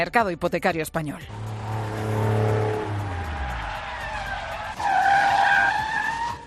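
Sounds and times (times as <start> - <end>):
speech: 0.0 - 1.5
car skidding to a hard stop: 1.3 - 6.4
loud sustained tire screech: 1.3 - 6.4.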